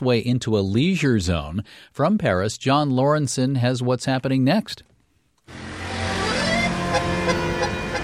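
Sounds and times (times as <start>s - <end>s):
speech: 0.0s - 4.9s
street traffic in Paris France: 5.5s - 8.0s
sustained tonal notes: 5.5s - 8.0s.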